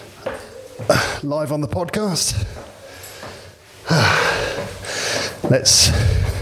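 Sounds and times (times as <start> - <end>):
speech: 0.2 - 2.8, 5.5 - 6.4
heavy laboured breathing of someone out of breath after climbing stairs: 0.8 - 1.3, 2.3 - 6.4
loud rasping gasps: 2.4 - 6.4.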